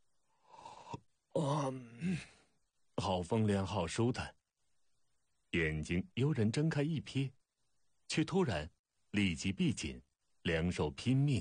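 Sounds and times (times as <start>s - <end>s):
person acting out a big drawn-out yawn: 0.5s - 2.4s
speech: 1.4s - 2.4s, 3.0s - 4.4s, 5.5s - 7.4s, 8.1s - 11.4s.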